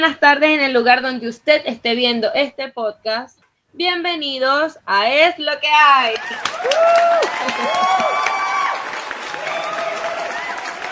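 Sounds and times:
speech: 0:00.0 - 0:08.4
applause: 0:06.2 - 0:10.9
whooping cheers: 0:06.2 - 0:10.9
laughter: 0:07.2 - 0:08.3.

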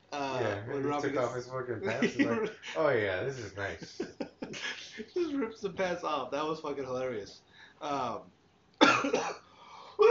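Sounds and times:
speech: 0:00.8 - 0:09.4
laughter: 0:01.8 - 0:05.5
person coughing: 0:08.8 - 0:10.0.

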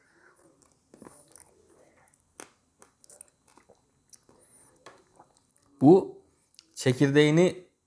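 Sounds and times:
biting and chewing a large green grape: 0:00.0 - 0:05.8
moist mouth sounds: 0:00.3 - 0:05.8
speech: 0:05.8 - 0:06.2, 0:06.8 - 0:07.6.

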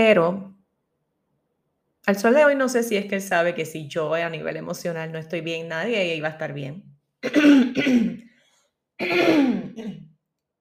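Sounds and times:
speech: 0:00.0 - 0:00.5, 0:02.0 - 0:08.3, 0:09.0 - 0:10.0
person clearing throat: 0:07.2 - 0:08.2, 0:09.0 - 0:10.2
person coughing: 0:07.2 - 0:08.3, 0:09.0 - 0:10.2.

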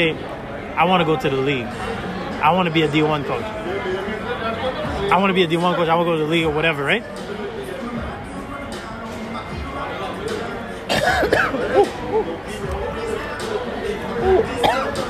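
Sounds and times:
speech: 0:00.0 - 0:07.5
murmur of overlapping voices: 0:00.0 - 0:15.0
coughing: 0:10.9 - 0:12.4, 0:14.1 - 0:15.0
laughter: 0:11.0 - 0:15.0.

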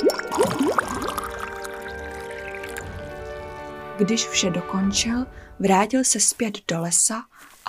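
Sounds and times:
rising bubbly glugs of liquid: 0:00.0 - 0:03.8
liquid poured and gurgling while mixing a potion: 0:00.0 - 0:04.0
speech: 0:04.0 - 0:07.6.

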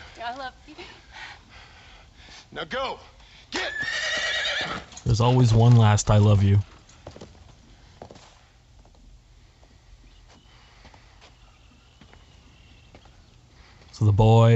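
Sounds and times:
faint outdoor noise: 0:00.0 - 0:14.5
speech: 0:00.2 - 0:01.7, 0:02.5 - 0:06.7, 0:14.0 - 0:14.5
horse hooves clip-clopping at a walking pace: 0:03.2 - 0:14.0.

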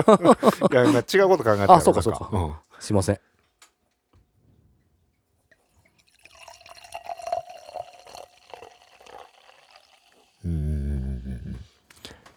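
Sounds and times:
laughter: 0:00.0 - 0:02.0
speech: 0:00.0 - 0:03.3
sparkling wine poured into a glass: 0:05.6 - 0:10.7.

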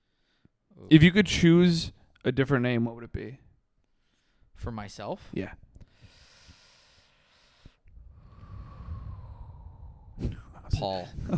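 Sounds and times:
speech: 0:00.8 - 0:03.4, 0:04.6 - 0:05.7, 0:10.8 - 0:11.3
person taking a deep breath: 0:05.9 - 0:10.6.

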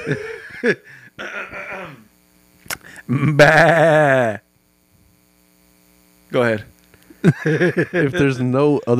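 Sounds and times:
laughter: 0:00.0 - 0:00.9, 0:07.1 - 0:08.9
speech: 0:00.0 - 0:02.0, 0:02.7 - 0:04.4, 0:06.3 - 0:08.9
person doing a sheep bleat impression: 0:03.1 - 0:04.5.

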